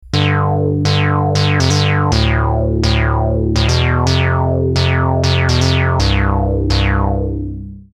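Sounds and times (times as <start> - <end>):
fifths noise: 0.0 - 7.4.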